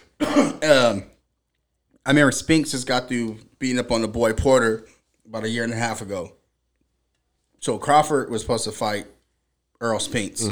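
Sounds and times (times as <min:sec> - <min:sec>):
coughing and throat clearing: 0:00.0 - 0:01.0
speech: 0:00.3 - 0:01.1, 0:02.1 - 0:06.4, 0:07.6 - 0:09.2, 0:09.8 - 0:10.5.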